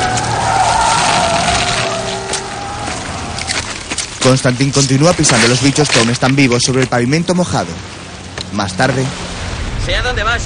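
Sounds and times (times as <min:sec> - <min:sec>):
loud tire squeal: 0:00.0 - 0:03.8
speech: 0:04.2 - 0:10.4.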